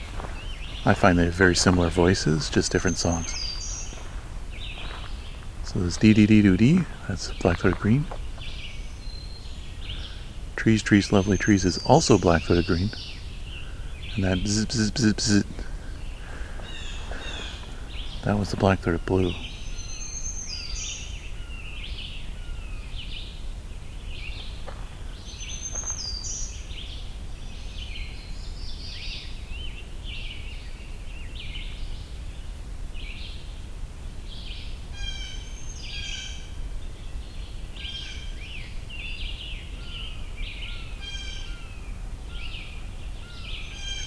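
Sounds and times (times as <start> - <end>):
red-shouldered hawk calling: 0.0 - 22.9, 34.9 - 36.6, 37.8 - 44.0
busy outdoor bird chorus: 0.0 - 44.0
steady low rumble: 0.0 - 44.0
speech: 0.8 - 3.4, 5.7 - 8.2, 10.6 - 13.1, 14.2 - 15.6, 18.2 - 19.5.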